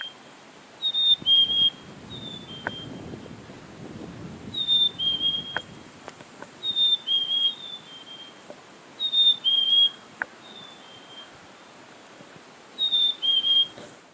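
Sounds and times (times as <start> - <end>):
black-capped chickadee whistled two-note phrases: 0.8 - 3.0, 4.6 - 5.7, 6.6 - 8.4, 9.0 - 11.3, 12.8 - 13.8.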